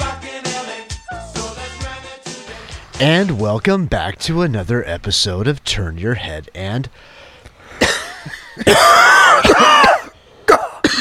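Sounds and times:
speech: 3.0s - 7.2s, 8.6s - 9.3s
person coughing and choking: 7.8s - 10.9s.

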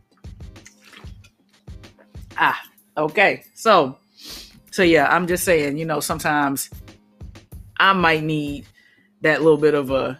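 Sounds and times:
person gulping water: 0.5s - 1.3s
speech: 2.4s - 6.8s, 7.8s - 10.1s.

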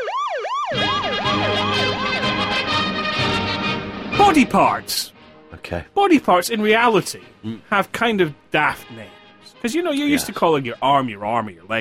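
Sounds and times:
ambulance siren wailing: 0.0s - 4.9s
speech: 4.3s - 11.7s.

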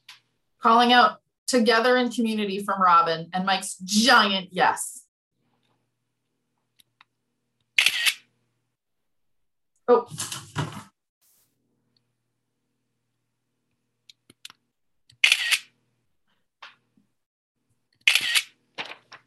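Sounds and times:
speech: 0.6s - 5.0s, 9.9s - 10.7s
screen capture camera shutter clicks: 7.8s - 8.3s, 15.2s - 15.7s, 18.0s - 18.6s.

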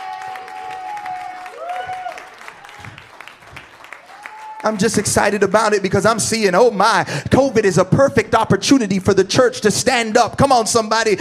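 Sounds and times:
church audience clapping hands: 0.0s - 6.8s
speech: 4.6s - 11.1s.

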